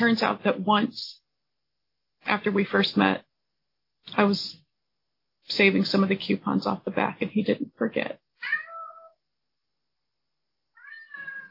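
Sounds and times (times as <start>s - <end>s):
speech: 0.0s - 1.2s, 2.2s - 3.3s, 4.0s - 4.6s, 5.5s - 8.6s
cat meowing to be fed: 8.4s - 9.2s, 10.8s - 11.4s.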